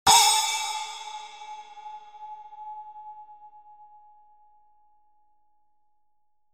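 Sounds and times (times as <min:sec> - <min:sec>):
8-inch dark splash cymbal: 0:00.1 - 0:02.7.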